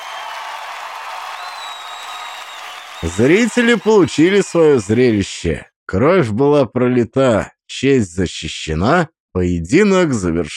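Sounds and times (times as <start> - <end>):
long high whistle: 0.0 - 4.4
large crowd cheering and applauding: 0.0 - 5.4
speech: 3.0 - 10.5.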